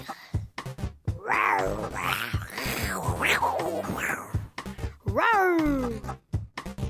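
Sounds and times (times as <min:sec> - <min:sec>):
person imitating a tiger's roar with growling yowls: 0:01.1 - 0:06.0.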